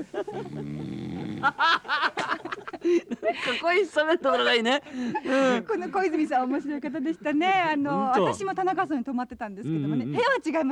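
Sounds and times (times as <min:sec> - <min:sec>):
speech: 0:00.0 - 0:02.1, 0:02.9 - 0:10.7
man snoring while asleep in a six-mat room at night: 0:00.4 - 0:01.6.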